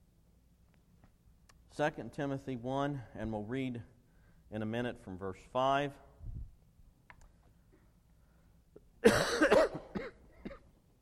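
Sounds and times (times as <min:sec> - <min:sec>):
quiet room hum: 0:00.0 - 0:11.0
speech: 0:01.8 - 0:03.9, 0:04.5 - 0:06.1
person coughing harshly: 0:09.0 - 0:10.8.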